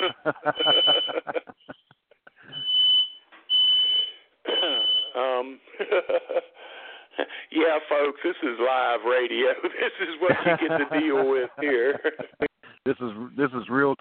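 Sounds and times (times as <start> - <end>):
home smoke alarm set off by dinner burning: 0.0 - 1.3, 2.4 - 5.2
laughter: 0.0 - 2.6, 4.5 - 7.5, 8.3 - 12.5
speech: 0.2 - 0.8, 8.1 - 14.0.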